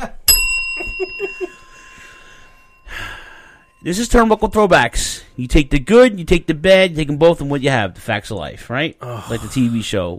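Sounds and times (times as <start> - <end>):
single sharp bell strike: 0.3 - 6.6
speech: 3.8 - 10.1.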